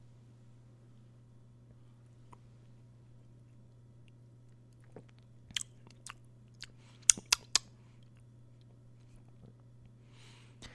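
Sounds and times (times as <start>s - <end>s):
faint steady hum: 0.0s - 10.7s
lip smacks and tongue clicks from sipping and tasting whiskey: 4.8s - 8.2s.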